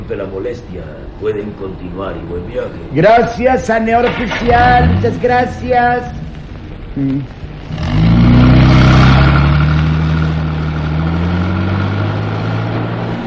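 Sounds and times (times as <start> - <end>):
speech: 0.1 - 6.2, 7.0 - 7.4
car engine accelerating onto an asphalt road: 4.0 - 13.2.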